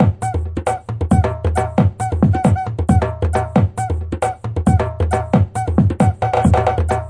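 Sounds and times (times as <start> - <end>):
funky Brazil music: 0.0 - 7.0.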